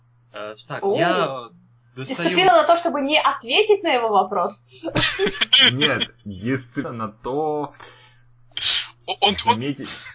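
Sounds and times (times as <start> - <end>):
low steady hum: 0.0 - 10.1
speech: 0.4 - 8.0, 8.6 - 10.1
laughter: 4.8 - 7.0, 9.1 - 9.8
person sneezing: 8.6 - 10.0.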